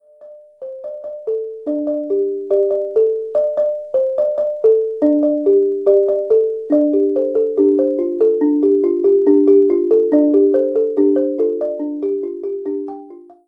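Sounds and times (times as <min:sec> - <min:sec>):
balafon: 0:00.0 - 0:13.4.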